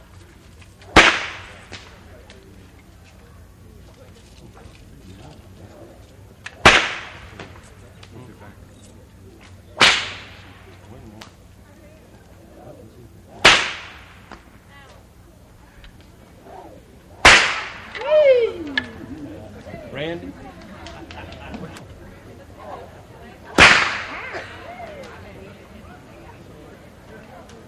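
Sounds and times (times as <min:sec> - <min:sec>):
faint murmur: 0:00.0 - 0:27.6
whip cracks by a man demonstrating: 0:00.7 - 0:02.4, 0:06.4 - 0:08.1, 0:09.7 - 0:11.4, 0:13.3 - 0:14.5, 0:16.4 - 0:19.0, 0:23.6 - 0:25.2
laughter: 0:18.3 - 0:25.2.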